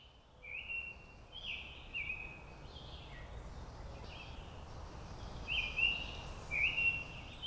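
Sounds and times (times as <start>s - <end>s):
summer tanager singing clear slurred whistled phrases: 0.0s - 2.4s, 5.5s - 7.4s.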